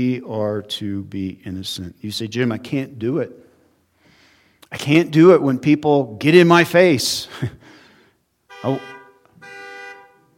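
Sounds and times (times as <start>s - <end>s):
speech: 0.0s - 3.4s, 4.7s - 7.6s, 8.6s - 8.9s
car horn honking: 8.5s - 10.3s.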